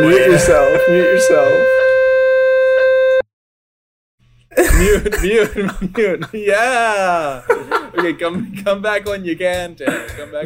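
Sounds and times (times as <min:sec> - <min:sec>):
speech: 0:00.0 - 0:01.8, 0:04.6 - 0:10.4
fire alarm electronic tone: 0:00.0 - 0:03.2
laughter: 0:04.6 - 0:08.9, 0:09.8 - 0:10.4.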